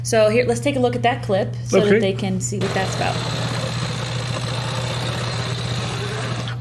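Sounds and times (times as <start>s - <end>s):
speech: 0.0s - 3.6s
small motorized bicycle engine idling: 2.6s - 6.5s.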